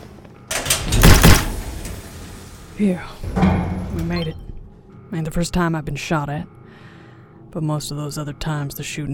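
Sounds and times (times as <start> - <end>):
heavy checkpoint door sliding and sealing shut: 0.5 - 4.3
speech: 2.8 - 4.5, 5.1 - 6.6, 7.5 - 9.1.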